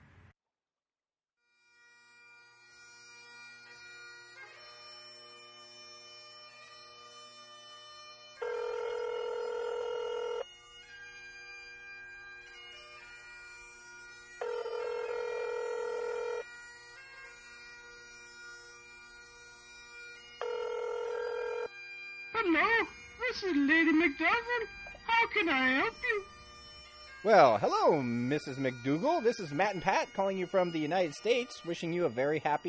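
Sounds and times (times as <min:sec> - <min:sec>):
phone line dialed from the United States to Ireland ringing: 0:08.4 - 0:10.4, 0:14.4 - 0:16.4, 0:20.4 - 0:21.7
telephone dialing tones: 0:08.4 - 0:10.4, 0:14.4 - 0:16.4, 0:20.4 - 0:21.7
speech: 0:22.4 - 0:26.3, 0:27.2 - 0:32.6.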